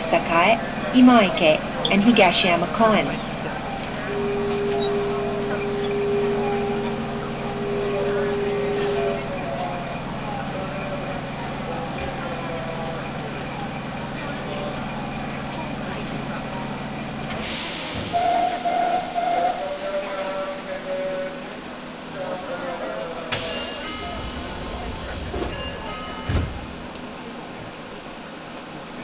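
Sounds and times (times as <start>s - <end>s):
subway train rumbling along the rails: 0.0s - 29.0s
speech: 0.1s - 3.3s.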